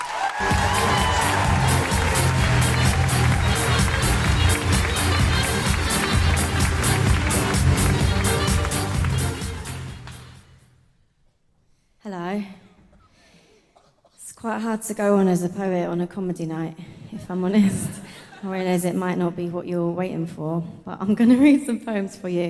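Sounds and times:
audience applauding and cheering at a comedy night: 0:00.0 - 0:10.4
speech: 0:14.5 - 0:22.4.

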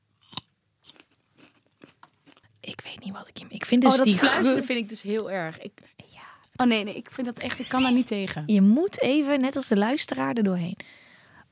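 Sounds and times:
grape crunching and chewing close to a microphone: 0:00.1 - 0:02.6
speech: 0:03.0 - 0:05.9, 0:06.6 - 0:11.0.

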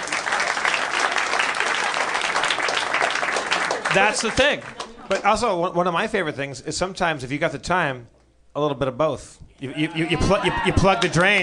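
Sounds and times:
room full of people applauding: 0:00.0 - 0:05.2
speech: 0:03.9 - 0:11.4.

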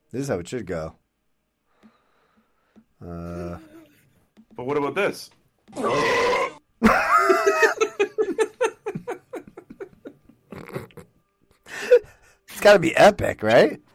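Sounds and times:
speech: 0:00.1 - 0:01.0, 0:03.0 - 0:03.7, 0:04.6 - 0:06.3, 0:12.6 - 0:13.8
rhythmic breathy laughter: 0:03.3 - 0:04.1, 0:06.8 - 0:12.3
loud drawn-out burp: 0:05.7 - 0:06.6.

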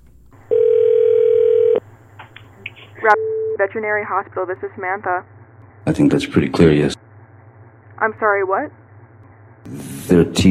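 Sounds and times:
phone line ringback tone on a call to a veterinary hospital: 0:00.5 - 0:01.8
speech: 0:03.0 - 0:07.0, 0:08.0 - 0:08.8, 0:09.6 - 0:10.4.

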